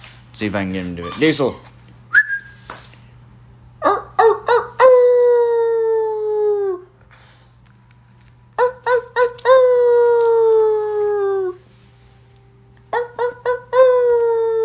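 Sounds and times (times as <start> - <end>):
speech: 0.4 - 1.7
man imitating a dog howling with yips: 3.8 - 6.9, 8.6 - 11.6, 13.0 - 14.6.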